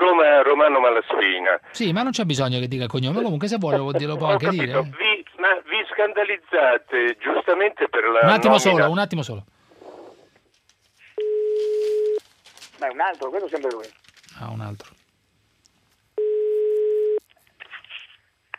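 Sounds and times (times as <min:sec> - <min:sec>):
speech: 0:00.7 - 0:09.6, 0:12.8 - 0:15.0
steady telephone line tone: 0:11.2 - 0:12.2, 0:16.2 - 0:17.2.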